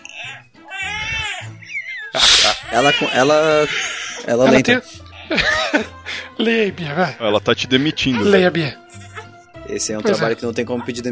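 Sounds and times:
baby crying: 0:00.0 - 0:05.8, 0:07.6 - 0:11.0
speech: 0:02.2 - 0:08.8, 0:09.7 - 0:11.1
laughter: 0:05.2 - 0:06.4.

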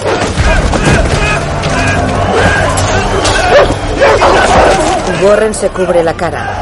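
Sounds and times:
several people shouting and clamoring: 0:00.0 - 0:06.6
dog barking and snarling while attacking a prisoner: 0:03.4 - 0:05.2
speech: 0:05.2 - 0:06.6.

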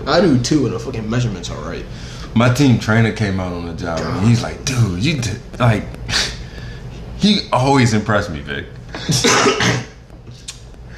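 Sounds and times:
speech: 0:00.0 - 0:06.3, 0:07.2 - 0:09.9
quiet breathing with a faint catch of the throat: 0:01.8 - 0:02.4, 0:06.2 - 0:07.2, 0:10.3 - 0:10.9
person coughing hard: 0:09.0 - 0:10.0.

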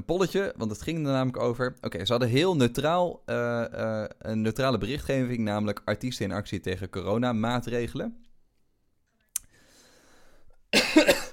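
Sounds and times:
speech: 0:00.0 - 0:08.3
click: 0:08.2 - 0:09.5
person coughing: 0:10.7 - 0:11.3.

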